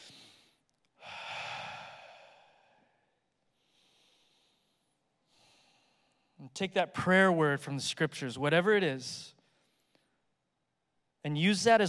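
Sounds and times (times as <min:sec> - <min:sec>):
slow deep airy breaths taken while sitting during a guided prayer: 0:00.0 - 0:06.4
speech: 0:06.5 - 0:09.4, 0:11.2 - 0:11.8.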